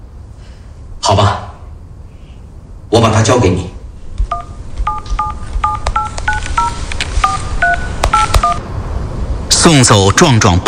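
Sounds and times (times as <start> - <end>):
speech: 1.1 - 1.4, 2.9 - 3.8, 9.6 - 10.6
mobile phone keypad dialling tones: 4.3 - 8.6.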